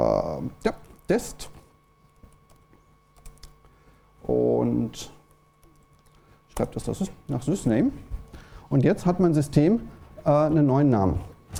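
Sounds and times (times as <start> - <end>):
speech: 0.4 - 1.5, 4.3 - 5.2, 6.6 - 8.1, 8.7 - 11.5
typing a command on a computer keyboard: 2.1 - 3.6, 5.6 - 6.8.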